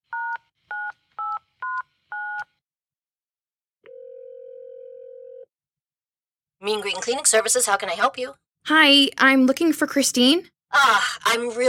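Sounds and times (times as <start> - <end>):
long steady electronic phone ring tone: 3.9 - 5.5
speech: 6.6 - 11.6.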